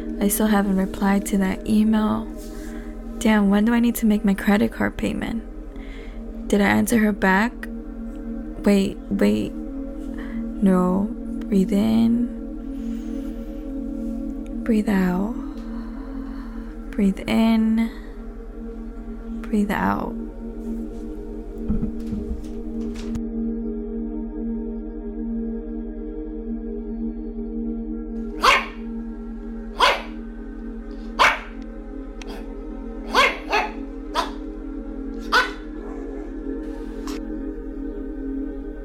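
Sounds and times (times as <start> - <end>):
steady low droning hum: 0.0 - 38.8
speech: 0.2 - 2.6, 3.2 - 5.5, 6.5 - 7.7, 8.6 - 9.6, 10.6 - 12.4, 14.7 - 15.4, 17.0 - 18.0, 19.5 - 20.2
dogs barking: 28.4 - 28.9, 29.8 - 30.2, 31.0 - 31.6, 32.2 - 34.5, 35.2 - 37.2.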